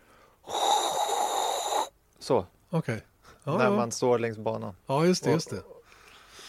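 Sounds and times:
person imitating Formula 1 car energy-recharging electric whine: 0.5 - 1.9
speech: 2.3 - 5.8.

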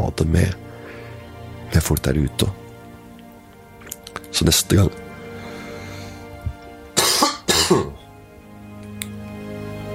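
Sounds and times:
speech: 0.2 - 0.6, 1.8 - 2.6, 4.4 - 5.0
person coughing: 7.0 - 8.0.

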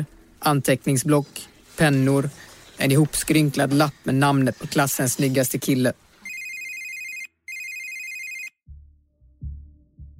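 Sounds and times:
speech: 0.0 - 6.0
rustling: 0.7 - 6.4
shrill electronic mobile phone ringtone: 6.2 - 8.6.

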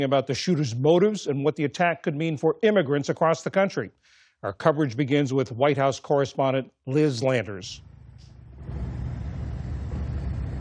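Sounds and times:
speech: 0.0 - 7.9
memorial vehicle procession engines rumbling through a city street in Washington, D.C.: 8.0 - 10.5.

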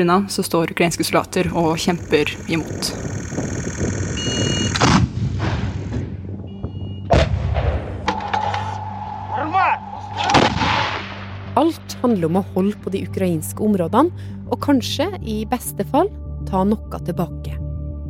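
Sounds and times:
speech: 0.0 - 3.6, 12.1 - 17.6
rising tonal whine: 1.4 - 4.8, 7.9 - 11.6
outgoing artillery fire booming: 4.8 - 8.3, 10.1 - 11.6.

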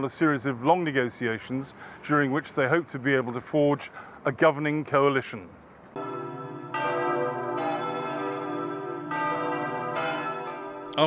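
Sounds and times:
speech: 0.0 - 5.6
church bells in Germany pealing after a national election: 6.0 - 11.0.

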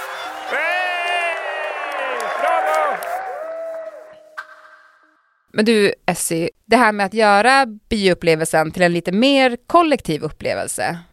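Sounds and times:
cinema audience screaming and cheering at a film screening: 0.0 - 4.3
speech: 0.5 - 0.8, 5.5 - 11.1.

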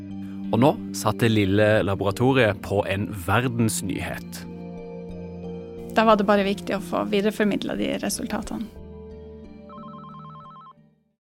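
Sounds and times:
speech: 0.5 - 4.5, 6.0 - 8.8
telephone in Oslo ringing with a warbling electronic tone: 9.7 - 10.8.

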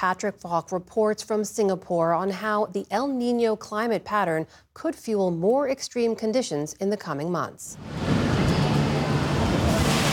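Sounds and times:
speech: 0.0 - 8.2
water rushing into a chamber during a simulated flood at a disaster training center: 7.8 - 10.1.

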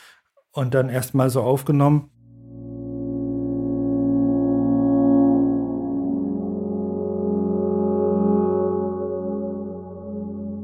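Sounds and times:
speech: 0.5 - 2.2
sustained synthesizer tones through Roland Space Echo tape echo: 2.1 - 10.6.

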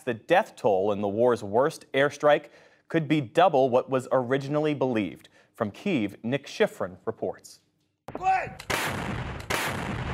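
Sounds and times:
speech: 0.0 - 9.3
artillery fire on the front lines in eastern Ukraine: 8.1 - 10.1.

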